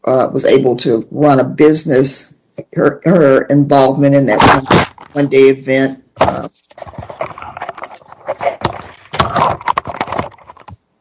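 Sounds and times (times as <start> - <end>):
speech: 0.0 - 7.1
camera being knocked and jostled: 6.2 - 10.8.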